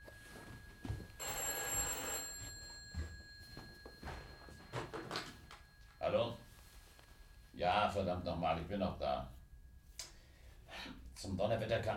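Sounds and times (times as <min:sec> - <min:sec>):
telephone ringing with electric bell: 0:00.0 - 0:07.1
speech: 0:06.1 - 0:06.4, 0:07.6 - 0:09.4, 0:11.2 - 0:11.9.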